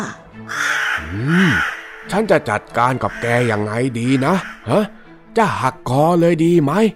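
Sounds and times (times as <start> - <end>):
large crow cawing: 0.0 - 5.1
speech: 0.0 - 6.9.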